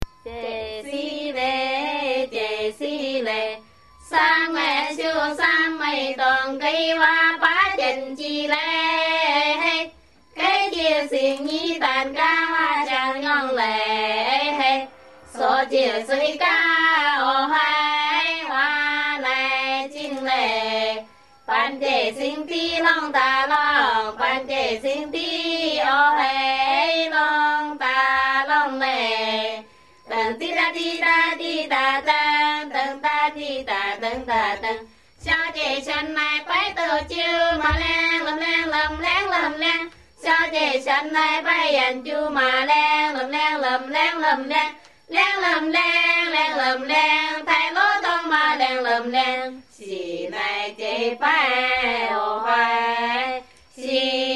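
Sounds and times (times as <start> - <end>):
women chanting in Chengyang China: 0.0 - 54.3.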